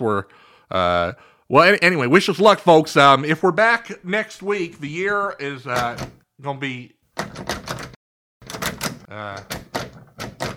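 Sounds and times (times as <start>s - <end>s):
speech: 0.0s - 7.7s, 9.2s - 9.6s
jammed door in a compound rattling and clunking while forced open: 5.8s - 6.2s, 7.2s - 10.5s.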